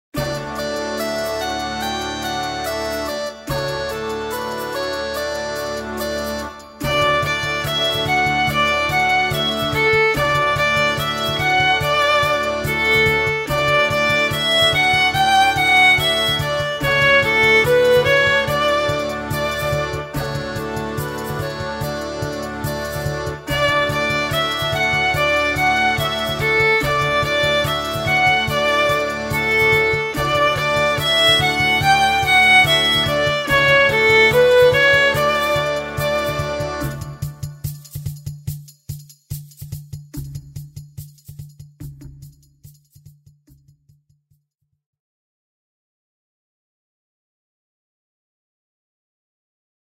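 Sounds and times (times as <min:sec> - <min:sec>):
flute: 0:00.2 - 0:37.5
drums: 0:00.2 - 0:43.7.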